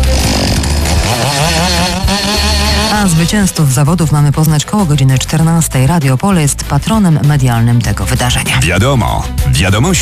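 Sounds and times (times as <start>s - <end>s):
chainsaw cutting wood at a lumberjack competition: 0.0s - 3.8s
speech: 3.2s - 10.0s.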